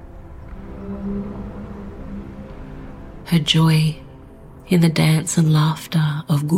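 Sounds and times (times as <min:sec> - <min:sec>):
low drawn-out whale moan: 0:00.4 - 0:03.3
speech: 0:03.3 - 0:04.0, 0:04.7 - 0:06.5.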